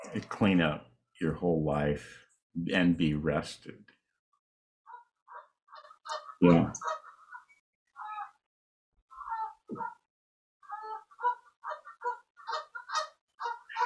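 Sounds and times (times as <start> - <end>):
speech: 0.0 - 4.0, 6.1 - 7.0
ducks quacking outside a boat: 4.9 - 8.4, 10.6 - 13.8.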